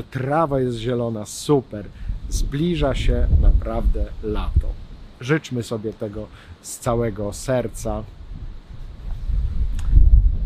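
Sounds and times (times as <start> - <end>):
speech: 0.0 - 8.2
heavy wind buffeting microphone: 1.6 - 5.2, 6.3 - 10.4.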